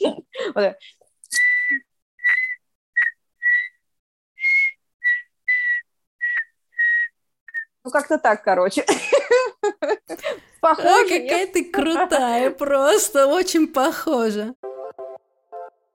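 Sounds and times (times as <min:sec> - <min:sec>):
speech: 0:00.6 - 0:01.0, 0:07.8 - 0:14.7
person whistling a slow mournful funeral-march melody: 0:01.3 - 0:03.8, 0:04.4 - 0:07.7
laughter: 0:08.9 - 0:10.4.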